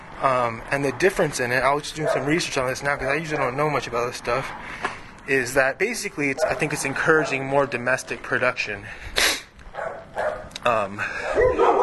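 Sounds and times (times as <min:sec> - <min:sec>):
speech: 0:00.2 - 0:09.2, 0:10.6 - 0:11.6
dogs barking in an alley: 0:02.0 - 0:03.6, 0:06.3 - 0:07.7, 0:09.7 - 0:11.8.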